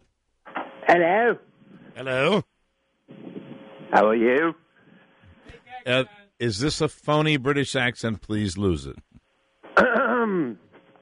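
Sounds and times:
speech: 0.9s - 2.5s, 3.9s - 4.6s, 5.5s - 9.1s
man clearing his throat: 9.8s - 10.7s.

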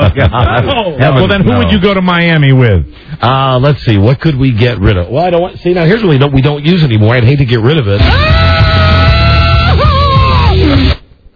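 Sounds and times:
laughter: 0.0s - 1.8s
speech: 0.2s - 8.4s
recorded scream used as a sound drop: 8.0s - 11.0s.

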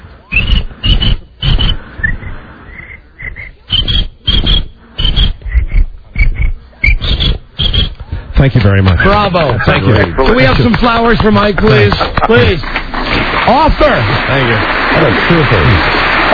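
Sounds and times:
voice imitating cricket chirps: 0.3s - 7.9s
speech: 8.4s - 12.8s, 13.5s - 16.3s
laughter: 9.0s - 16.3s.

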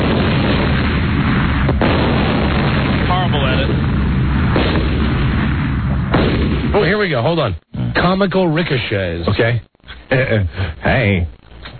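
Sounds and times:
barrage of heavy explosions booming: 0.0s - 7.6s
speech: 7.0s - 11.7s.

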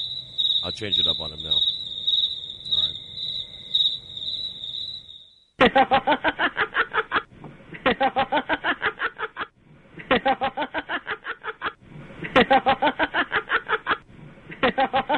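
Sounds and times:
crickets chirping: 0.0s - 5.6s
speech: 0.6s - 1.8s, 5.6s - 6.6s, 8.0s - 8.6s
laughter: 5.6s - 15.1s.

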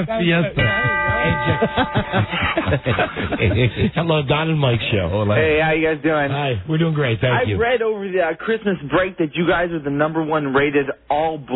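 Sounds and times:
laughter: 0.0s - 4.3s
speech: 0.0s - 11.5s
single bright ding sound effect: 0.6s - 2.6s.

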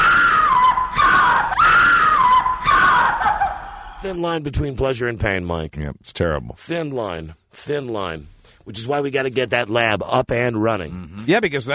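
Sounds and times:
woman screaming: 0.0s - 4.0s
speech: 4.1s - 11.7s.

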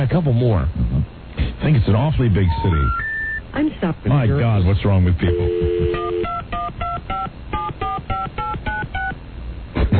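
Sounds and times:
speech: 0.0s - 1.0s, 1.6s - 3.0s, 3.6s - 6.3s
touch-tone beeps of a telephone number being dialed: 2.5s - 3.4s, 5.4s - 9.2s.

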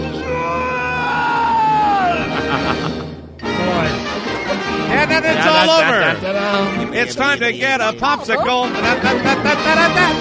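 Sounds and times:
cartoonish scream sliding downward in pitch: 0.1s - 2.5s
laughter: 1.9s - 3.1s, 4.3s - 10.1s
speech: 5.7s - 10.1s.

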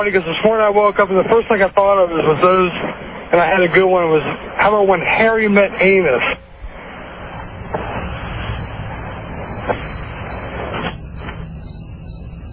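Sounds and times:
speech: 0.0s - 6.4s
crickets chirping in a dense outdoor chorus: 6.6s - 12.5s.

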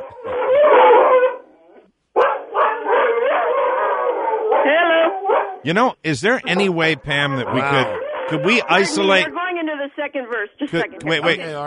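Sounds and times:
several dogs barking and howling: 0.0s - 5.6s, 6.4s - 9.4s
speech: 5.6s - 9.4s, 10.0s - 11.6s.

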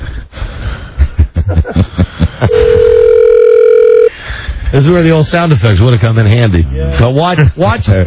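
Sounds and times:
person chuckling: 1.0s - 3.1s
telephone dial tone when placing a call: 2.5s - 4.1s
speech: 4.8s - 8.0s.

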